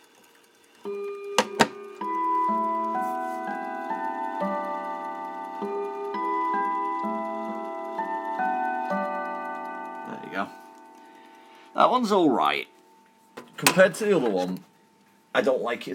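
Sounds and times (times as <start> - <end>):
brief mechanical rattle: 0.0 - 11.1
clock chiming a slow melody: 0.8 - 13.1
speech: 11.8 - 12.7, 13.6 - 14.7, 15.4 - 15.9.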